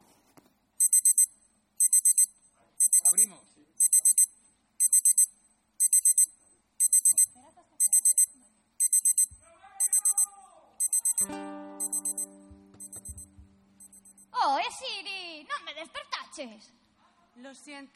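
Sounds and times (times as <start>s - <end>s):
digital alarm clock beeping: 0.8s - 14.3s
speech: 14.7s - 16.8s, 17.4s - 17.9s.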